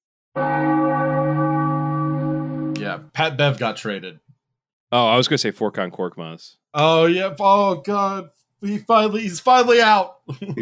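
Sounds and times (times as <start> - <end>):
bell ringing: 0.4 - 3.2
speech: 2.8 - 4.3, 4.9 - 10.5
laughter: 10.3 - 10.5.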